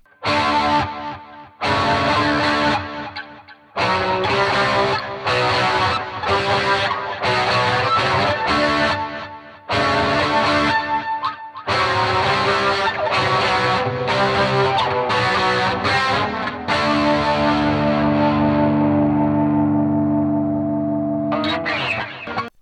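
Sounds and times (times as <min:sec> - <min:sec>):
loud overdriven electric guitar chords through an amplifier: 0:00.0 - 0:22.5.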